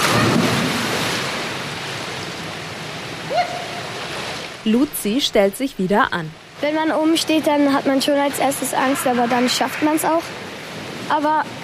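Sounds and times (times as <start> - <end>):
splash of diver entering pool feet first: 0.0 - 1.6
speech: 4.6 - 10.5, 11.1 - 11.6.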